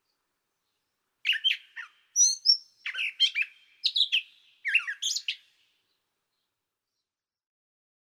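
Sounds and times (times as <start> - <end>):
Gray catbird song: 0.7 - 6.5.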